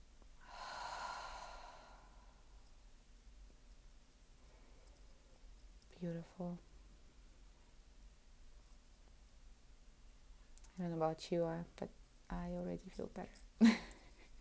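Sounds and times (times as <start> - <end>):
quiet hiss: 0.0 - 14.3
breathing out through the mouth during a guided breathing exercise: 0.4 - 2.4
brief faint vocal sound: 0.4 - 2.6
speech: 6.0 - 6.7, 10.8 - 13.8.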